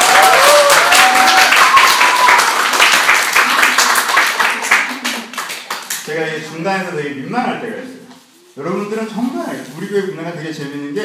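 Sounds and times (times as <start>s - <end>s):
church audience applauding: 0.0s - 6.0s
speech: 6.6s - 8.0s, 8.6s - 11.0s.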